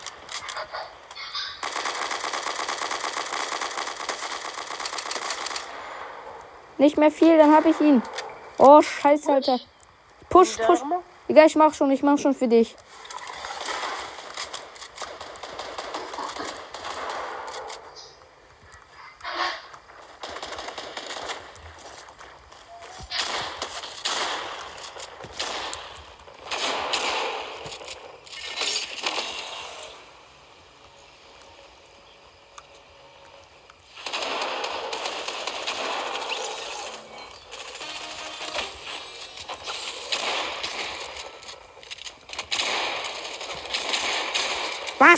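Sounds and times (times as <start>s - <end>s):
video game automatic gunfire during a team firefight: 1.6s - 6.4s, 13.2s - 18.0s, 19.9s - 30.0s, 33.8s - 45.1s
speech: 6.8s - 9.7s, 10.3s - 12.8s.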